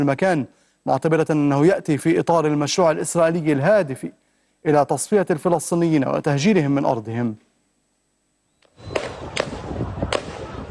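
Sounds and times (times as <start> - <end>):
speech: 0.0 - 7.5
heavy gunfire shots: 8.8 - 10.6.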